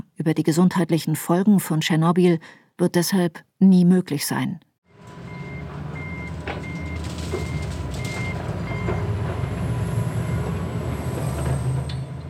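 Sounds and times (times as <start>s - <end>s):
speech: 0.2s - 4.7s
regional train rumbling at a station: 4.9s - 12.2s.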